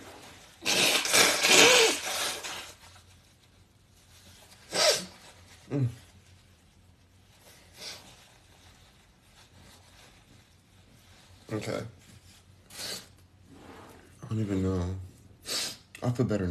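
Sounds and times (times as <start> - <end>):
person blowing their nose: 0.4 - 2.8, 4.5 - 6.0, 7.7 - 8.1, 12.7 - 13.8, 15.4 - 15.9
person sniffing and snorting: 0.5 - 2.8, 4.6 - 6.0, 12.7 - 14.1, 15.4 - 15.9
speech: 5.7 - 6.0, 11.6 - 12.0, 14.3 - 15.0, 16.0 - 16.4.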